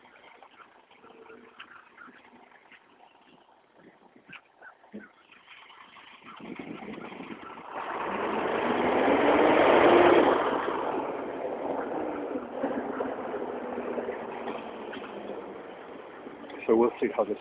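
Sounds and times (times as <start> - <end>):
faint birdsong: 0.0 - 7.8, 11.2 - 17.3
large recycling truck engine rumbling: 0.0 - 17.3
speech: 16.8 - 17.3.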